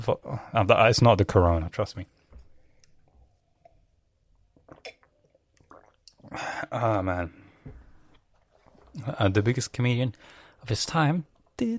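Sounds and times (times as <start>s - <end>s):
speech: 0.0s - 2.2s, 6.3s - 7.8s, 9.0s - 11.7s
person swallowing with something stuck in their throat: 4.5s - 9.0s.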